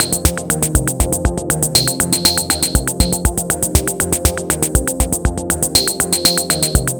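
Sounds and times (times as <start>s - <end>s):
drum and bass groove with effects: 0.0s - 6.9s.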